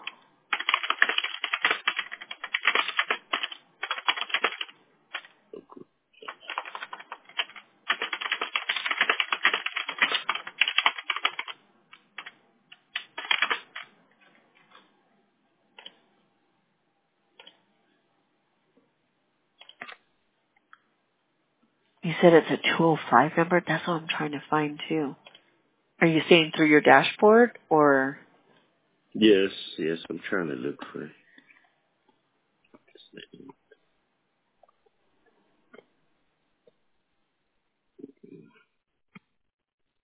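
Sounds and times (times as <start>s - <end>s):
rapid typing of a note on a computer keyboard: 0.5s - 5.3s, 6.2s - 13.9s, 19.6s - 20.0s
speech: 22.2s - 25.3s, 26.0s - 28.2s, 29.2s - 31.2s.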